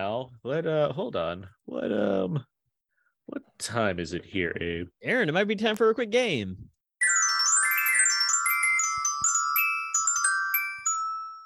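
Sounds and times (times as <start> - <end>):
speech: 0.0 - 2.5, 3.3 - 6.8
small bell on a necklace jingling: 7.0 - 11.4.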